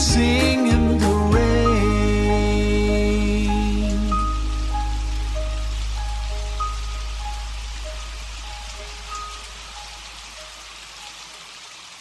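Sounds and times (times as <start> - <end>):
low rumble: 0.0 - 10.4
steady rain pattering on a hard surface: 0.1 - 11.9
faint tonal chimes: 1.5 - 10.6.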